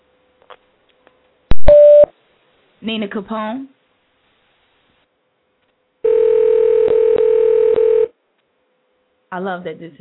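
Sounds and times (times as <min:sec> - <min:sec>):
speech: 0:02.8 - 0:03.8, 0:09.4 - 0:10.0
telephone dial tone while dialing out: 0:06.1 - 0:08.1.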